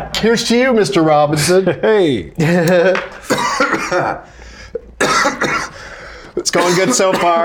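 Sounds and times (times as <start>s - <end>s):
speech: 0.2s - 4.5s, 5.2s - 5.7s, 6.4s - 7.4s
laughter: 1.4s - 4.3s
harsh coughing: 3.2s - 4.2s, 5.0s - 5.8s, 6.6s - 7.4s.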